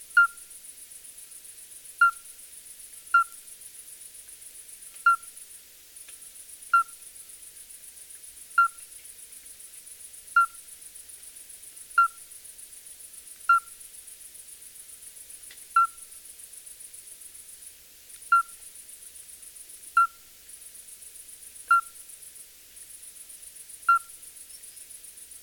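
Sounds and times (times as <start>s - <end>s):
midwife toad calling: 0.1s - 0.5s, 2.0s - 2.3s, 3.1s - 3.5s, 5.0s - 5.4s, 6.7s - 7.0s, 8.5s - 8.9s, 10.4s - 10.6s, 12.0s - 12.3s, 13.5s - 13.8s, 15.8s - 16.1s, 18.3s - 18.6s, 20.0s - 20.3s, 21.7s - 22.0s, 23.9s - 24.2s.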